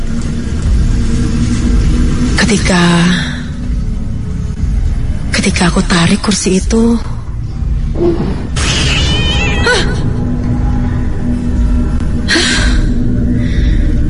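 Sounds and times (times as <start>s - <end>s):
steady low rumble: 0.0s - 14.0s
speech: 2.5s - 3.3s, 5.5s - 7.1s, 8.0s - 8.8s
black-furred cat meowing: 8.9s - 9.9s.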